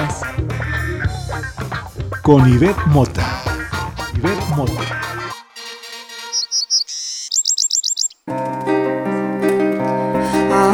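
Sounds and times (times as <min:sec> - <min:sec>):
music: 0:00.0 - 0:06.4, 0:08.3 - 0:10.7
speech: 0:02.3 - 0:03.4, 0:04.2 - 0:05.1
golden hummingbird chirping: 0:06.1 - 0:08.2.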